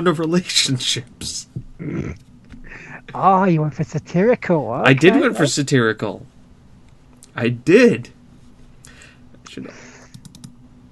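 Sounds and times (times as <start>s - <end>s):
speech: 0.0s - 6.3s, 7.4s - 8.2s, 9.5s - 9.9s
frantic computer mouse clicking: 10.1s - 10.6s.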